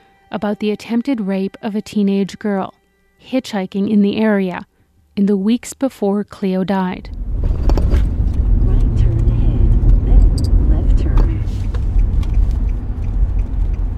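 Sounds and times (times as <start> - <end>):
speech: 0.3 - 7.2
car moving through traffic heard from inside: 6.9 - 13.9.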